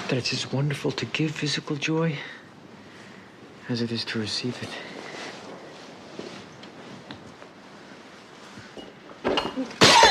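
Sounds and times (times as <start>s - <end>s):
speech: 0.1s - 2.4s, 3.7s - 4.9s
soft scuffling: 4.4s - 9.2s
vase smashing over a man's head: 9.2s - 10.1s.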